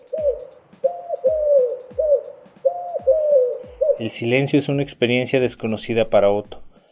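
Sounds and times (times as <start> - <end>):
pigeons cooing perched on a ledge: 0.0 - 4.5
speech: 4.0 - 6.6.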